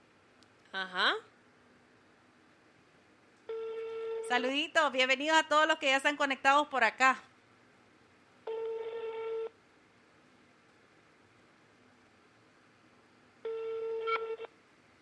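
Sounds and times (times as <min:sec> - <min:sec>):
speech: 0:00.7 - 0:01.3, 0:04.3 - 0:07.3
ringback tones of an outgoing phone call: 0:03.5 - 0:04.3, 0:08.4 - 0:09.6, 0:13.4 - 0:14.5.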